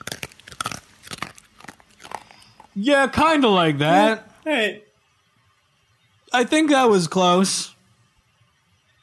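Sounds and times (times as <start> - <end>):
crisp crunching bites sound effect: 0.0 - 2.8
speech: 2.8 - 4.9, 6.3 - 7.7.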